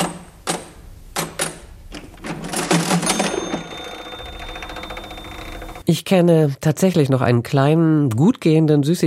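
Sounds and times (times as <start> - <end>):
old mechanical cash register ringing: 2.2 - 5.8
speech: 5.9 - 9.0.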